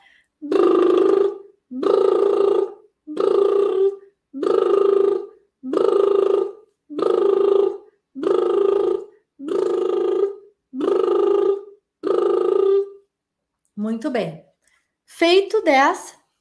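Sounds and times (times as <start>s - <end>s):
buzzing lip trills in a vocal warm-up exercise: 0.4s - 13.1s
speech: 13.9s - 14.4s, 15.2s - 16.2s.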